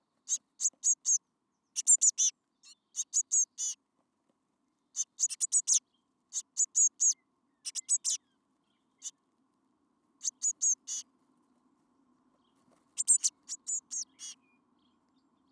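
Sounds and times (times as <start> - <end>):
Eurasian blue tit Cyanistes caeruleus calling with high-pitched chips: 0.3 - 1.2, 1.8 - 3.8, 5.0 - 8.2, 10.2 - 11.0, 13.0 - 14.4.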